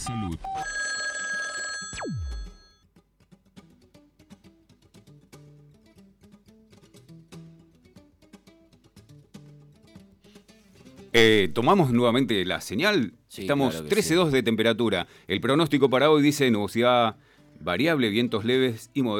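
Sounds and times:
speech: 0.0 - 0.8, 11.1 - 19.1
telephone ringing on an outgoing call: 0.5 - 2.8
quiet low rhythmic music: 3.0 - 19.1.

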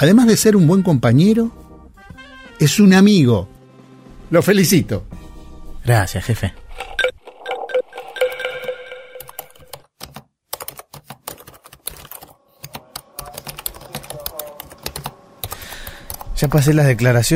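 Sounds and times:
speech: 0.0 - 1.6, 2.6 - 3.6, 4.3 - 5.2, 5.8 - 6.6, 16.4 - 17.3
typing on a computer keyboard: 7.0 - 16.4.

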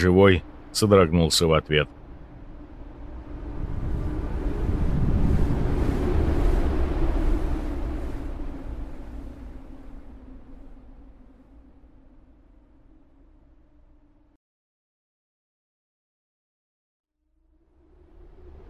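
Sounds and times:
speech: 0.0 - 2.0
wind howling outside an ice-crusted bunker: 0.0 - 14.3, 17.5 - 18.6.

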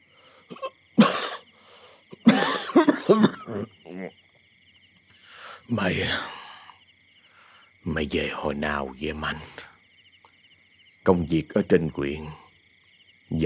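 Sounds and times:
feigned dry cough: 0.5 - 3.8
speech: 3.1 - 4.2, 5.7 - 6.4, 8.0 - 9.7, 11.1 - 12.4
throaty exhale: 5.2 - 7.7.

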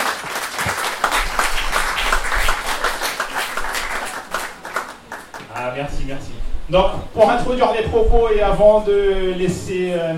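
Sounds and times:
audience applause at a public science café talk: 0.0 - 5.7
speech: 5.8 - 10.1.

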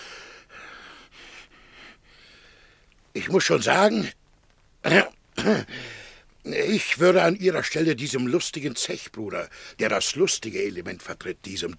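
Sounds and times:
man gasping and panting for breath with a side stitch after running: 0.0 - 2.9, 5.6 - 6.2
speech: 3.3 - 4.2, 4.8 - 11.7.

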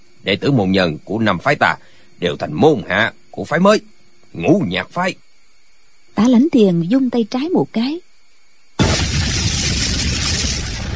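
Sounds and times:
speech: 0.2 - 5.2, 6.2 - 8.1
firecrackers exploding on both sides of a mountain at a celebration: 8.8 - 10.9.

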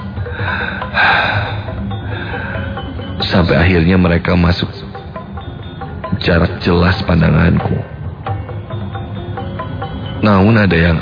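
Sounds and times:
heavy breathing while steadying breath: 0.0 - 3.2
speech: 3.3 - 5.0, 6.2 - 7.9, 10.2 - 11.0.

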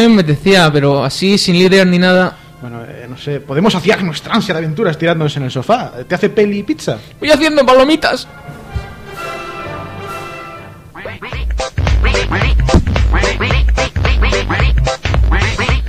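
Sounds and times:
speech: 0.0 - 8.6, 12.3 - 13.6
duck quacking: 10.9 - 15.8.

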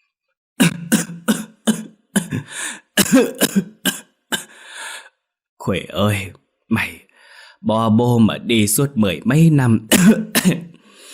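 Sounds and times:
old man coughing in rough wet hacking bursts: 0.6 - 4.6, 9.9 - 10.8
speech: 3.1 - 3.7, 5.7 - 7.0, 7.6 - 10.7.

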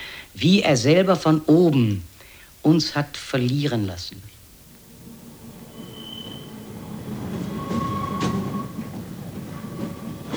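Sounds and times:
speech: 0.4 - 4.3
tram wheels rumbling on rails in Hamburg: 3.4 - 10.3
thin high tram wheel squeals: 4.2 - 10.3.

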